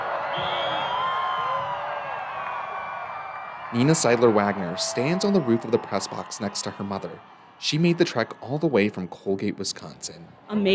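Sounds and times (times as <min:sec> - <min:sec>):
large stadium crowd cheering and whooping during a total eclipse: 0:00.0 - 0:10.7
speech: 0:03.7 - 0:10.7.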